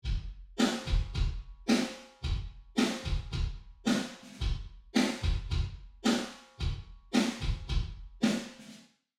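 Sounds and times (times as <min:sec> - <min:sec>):
wet kick drum: 0:00.0 - 0:01.6, 0:02.2 - 0:03.7, 0:04.4 - 0:06.0, 0:06.6 - 0:08.2
wet snare drum: 0:00.0 - 0:08.8.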